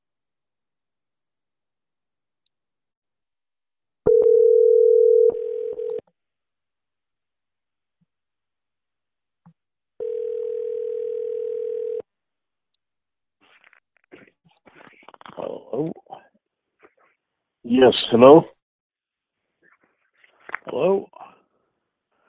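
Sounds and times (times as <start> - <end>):
steady low electronic telephone line tone while dialing: 4.1 - 6.0, 10.0 - 12.0
speech: 17.7 - 18.5.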